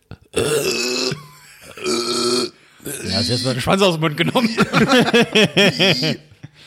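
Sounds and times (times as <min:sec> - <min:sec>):
person imitating acid burps from heartburn: 0:00.2 - 0:03.6, 0:05.6 - 0:06.3
speech: 0:03.1 - 0:06.3
laughter: 0:04.2 - 0:06.6.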